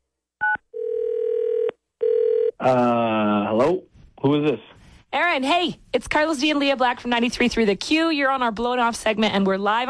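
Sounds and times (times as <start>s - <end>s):
telephone ringback tone: 0.4s - 2.5s
speech: 2.6s - 9.8s.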